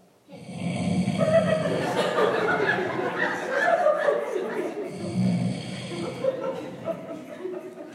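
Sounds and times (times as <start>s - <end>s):
voice imitating loud snoring: 0.3s - 1.8s, 4.9s - 6.5s
stifled laughter: 1.0s - 7.9s.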